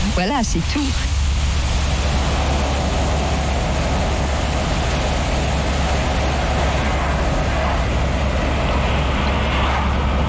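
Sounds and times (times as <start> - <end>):
car interior rumble while driving: 0.0 - 10.2
speech: 0.2 - 1.1.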